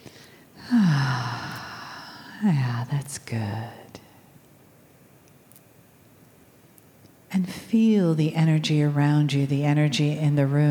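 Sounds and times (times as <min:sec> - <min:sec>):
deep breath taken during a guided breathing and relaxation exercise: 0:00.0 - 0:02.4
brief voiced sigh falling in pitch: 0:00.2 - 0:02.4
speech: 0:02.4 - 0:03.9, 0:07.3 - 0:10.6.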